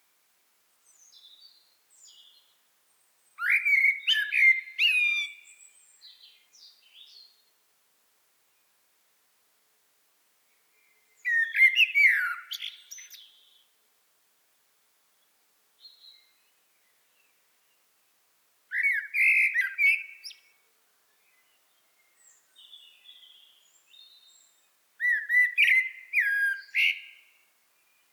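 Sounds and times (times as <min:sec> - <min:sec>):
common blackbird Turdus merula singing: 0:03.4 - 0:07.4, 0:10.8 - 0:13.6, 0:18.7 - 0:28.1.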